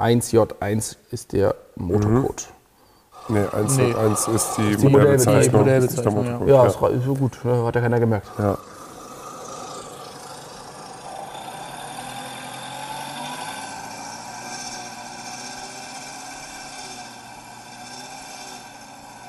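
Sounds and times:
speech: 0:00.0 - 0:02.6, 0:03.2 - 0:08.8
Volkswagen Golf 4 engine idling: 0:08.3 - 0:15.5.

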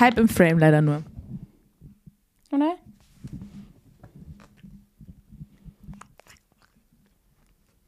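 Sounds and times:
speech: 0:00.0 - 0:01.1, 0:02.5 - 0:02.8
toothless cat chewing and smacking on food: 0:03.4 - 0:07.8.

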